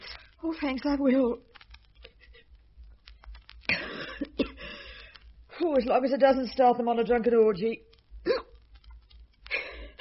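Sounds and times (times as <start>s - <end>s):
speech: 0.4s - 1.5s, 5.6s - 7.9s
sharp gulping hiccups: 8.2s - 8.6s.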